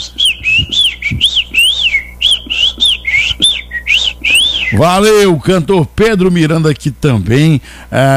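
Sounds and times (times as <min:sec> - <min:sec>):
person whistling an imitation of an ultramarine grosbeak song: 0:00.0 - 0:05.0
speech: 0:04.7 - 0:08.1.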